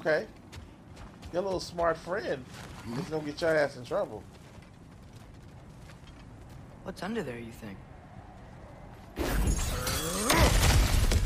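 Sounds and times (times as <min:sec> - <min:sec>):
speech: 0:00.0 - 0:00.4, 0:01.3 - 0:04.4, 0:06.9 - 0:07.9
smash through an obstacle: 0:09.3 - 0:11.2
splintering shattering debris scattering and clattering: 0:09.3 - 0:11.2.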